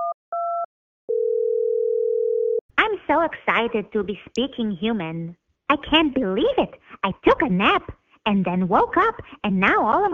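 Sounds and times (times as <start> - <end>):
steady telephone line tone: 0.0 - 2.6
speech: 3.1 - 10.1.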